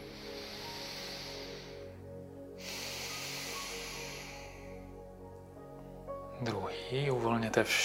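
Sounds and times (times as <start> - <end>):
slow deep breathing in and out during a relaxation exercise: 0.0 - 5.8
speech: 6.4 - 7.8.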